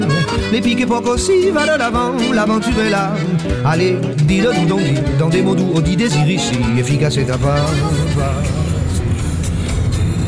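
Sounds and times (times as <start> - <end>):
speech: 0.5 - 8.6
engine and road rumble inside a moving car carrying a bicycle during a storm: 6.7 - 10.2.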